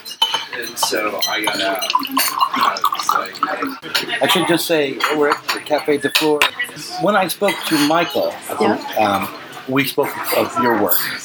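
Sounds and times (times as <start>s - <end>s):
glassware and dishes clinking: 0.0s - 9.3s
murmur of voices in a café: 0.0s - 11.2s
water poured into a glass: 0.5s - 4.5s
speech: 0.6s - 11.2s.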